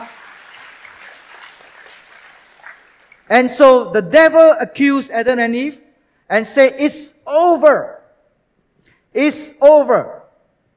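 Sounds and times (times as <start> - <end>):
church congregation applauding in a clap offering: 0.0 - 3.5
speech: 3.3 - 8.0, 9.2 - 10.2.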